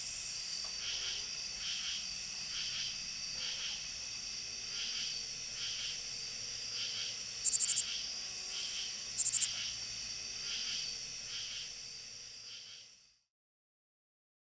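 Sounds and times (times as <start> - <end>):
insect chorus buzzing: 0.0 - 13.2
lesser angle-wing katydid song: 7.4 - 7.8, 9.2 - 9.5.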